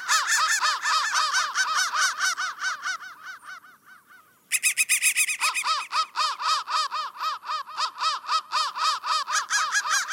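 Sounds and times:
crows giving rapid repeated harsh calls: 0.0s - 10.1s.

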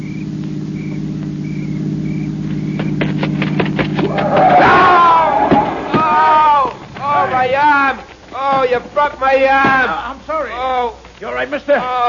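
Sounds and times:
approaching car engine droning: 0.0s - 11.1s
noisy commotion: 0.0s - 12.0s
raised voices: 4.0s - 12.0s
speech: 8.8s - 12.0s.

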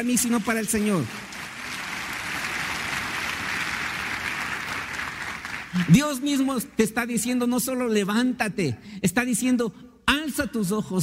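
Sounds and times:
speech: 0.0s - 1.4s, 5.8s - 11.0s
large audience applauding loudly: 0.0s - 6.2s.

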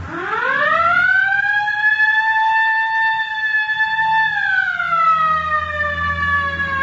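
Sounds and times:
low engine rumble: 0.0s - 6.8s
police car siren wailing during pursuit of a bus: 0.0s - 6.8s.

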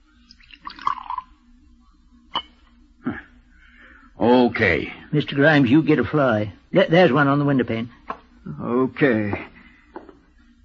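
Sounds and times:
poison pouring into a tumbler: 0.2s - 1.4s
speech: 4.2s - 9.5s.

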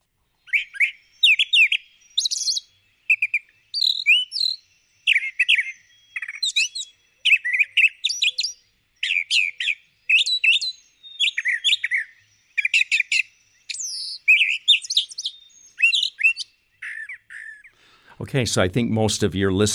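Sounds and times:
bird song with doubled, repeated chirping and whistled phrases: 0.0s - 19.7s
speech: 18.3s - 19.7s.

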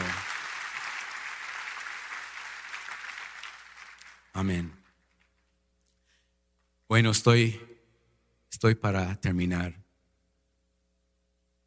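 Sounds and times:
congregation applauding: 0.0s - 5.3s
speech: 4.4s - 4.8s, 6.9s - 7.7s, 8.5s - 9.8s.

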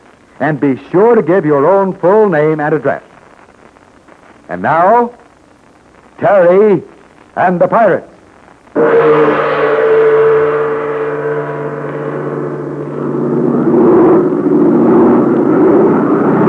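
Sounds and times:
speech: 0.4s - 3.1s, 4.5s - 5.2s, 6.2s - 8.1s, 8.8s - 9.5s
large propeller airplane engine droning overhead: 8.8s - 16.4s.

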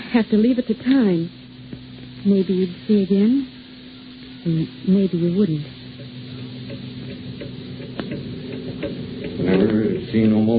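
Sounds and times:
constant low hum: 0.0s - 10.5s
speech: 0.1s - 1.4s, 2.2s - 3.6s, 4.4s - 5.7s, 9.4s - 10.5s
clock ticking: 6.0s - 10.4s.

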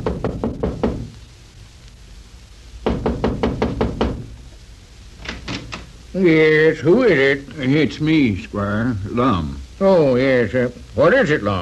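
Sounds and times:
sharp knocking on a wooden front door: 0.0s - 1.1s, 2.8s - 4.4s
speech: 6.2s - 11.6s.

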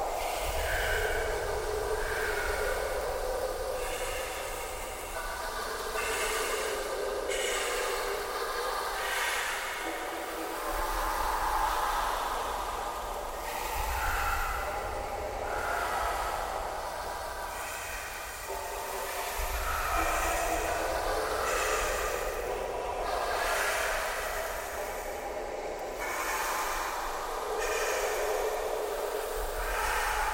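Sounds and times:
breathing: 0.2s - 30.3s.

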